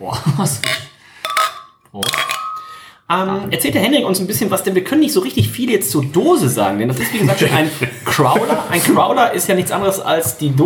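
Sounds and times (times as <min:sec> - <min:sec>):
speech: 0:00.0 - 0:00.9, 0:03.1 - 0:10.6
glasses clinking together in a toast: 0:00.6 - 0:02.9
laughter: 0:07.0 - 0:09.0.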